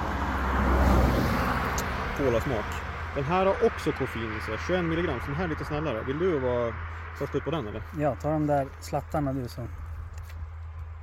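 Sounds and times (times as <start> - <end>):
car passing by with road rumble: 0.0 - 8.6
speech: 2.2 - 9.8.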